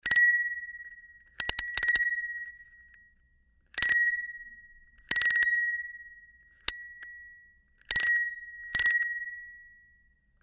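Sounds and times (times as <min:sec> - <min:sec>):
bicycle bell: 0:00.0 - 0:10.4.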